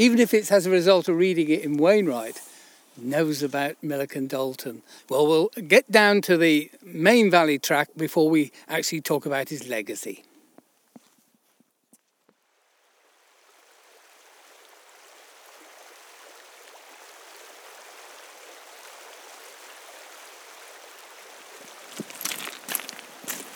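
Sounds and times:
River Derwent rushing by tree-flanked banks: 0.0s - 7.6s, 13.2s - 23.5s
speech: 0.0s - 10.3s
footsteps: 21.6s - 23.5s.

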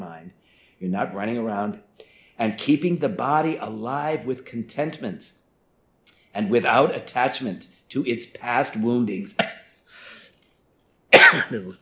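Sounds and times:
speech: 0.8s - 5.4s, 6.3s - 9.6s, 11.3s - 11.7s
cough from a tickle in the throat: 9.4s - 9.8s, 11.1s - 11.7s.

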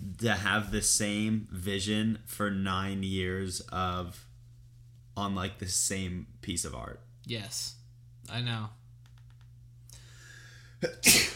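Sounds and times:
speech: 0.2s - 4.3s, 5.2s - 8.8s, 10.8s - 11.3s
person sneezing: 10.8s - 11.3s.

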